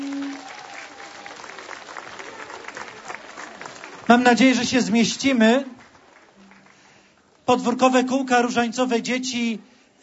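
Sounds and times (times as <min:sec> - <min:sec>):
gathering applauding to welcome guests from Ukraine: 0:00.0 - 0:07.4
speech: 0:04.1 - 0:05.8, 0:07.5 - 0:10.0.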